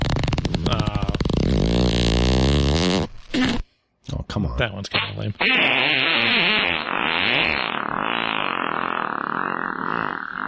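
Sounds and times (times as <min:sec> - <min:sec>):
buzzy fart-like sound made by blowing against an arm: 0:00.0 - 0:03.7, 0:05.0 - 0:10.4
speech: 0:04.6 - 0:08.0.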